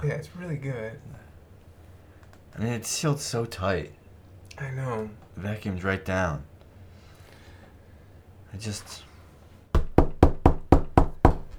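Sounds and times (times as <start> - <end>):
speech: 0.0 - 1.3, 2.5 - 4.0, 4.6 - 6.5, 8.5 - 9.1
knocking on a door: 9.7 - 11.5.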